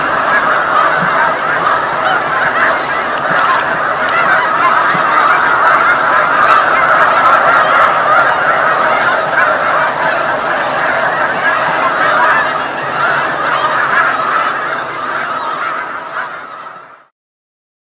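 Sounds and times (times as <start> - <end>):
dense flock of snow geese honking and yelping on Lake Champlain: 0.0 - 17.1.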